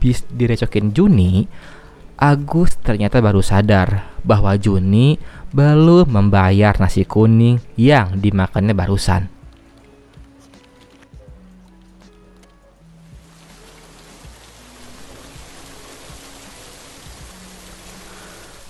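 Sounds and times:
speech: 0.0 - 9.4
raindrops tapping thickening into a steady downpour: 13.0 - 18.6.

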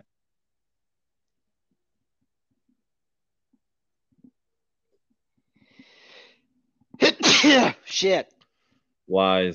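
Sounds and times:
sneeze: 7.0 - 8.0
speech: 8.0 - 8.4, 9.1 - 9.5.

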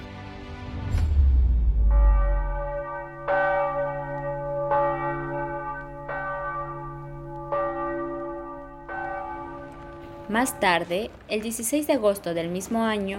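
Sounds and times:
deep rumble: 0.8 - 2.9
church bells ringing: 1.8 - 11.4
speech: 10.3 - 13.1.

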